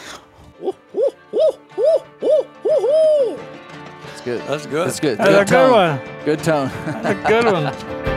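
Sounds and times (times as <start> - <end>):
laughter: 0.6 - 2.9, 5.0 - 8.0
person imitating owl hoots: 0.6 - 3.4
speech: 4.3 - 8.0.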